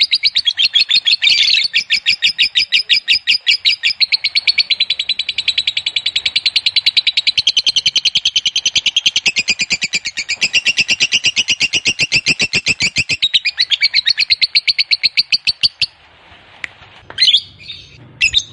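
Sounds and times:
fighter-type lovebird giving a drawn-out chattering song: 0:00.0 - 0:16.0.

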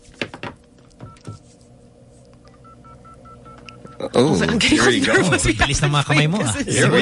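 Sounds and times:
touch-tone telephone dialing beeps: 0:02.5 - 0:04.0
speech: 0:04.0 - 0:07.0
laughter: 0:04.1 - 0:07.0.

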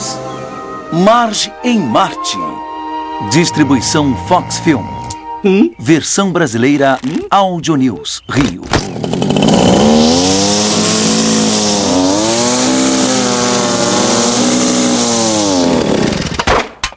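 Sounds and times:
speech: 0:00.9 - 0:10.6
fuelled-up leaf blower running: 0:08.8 - 0:16.4.

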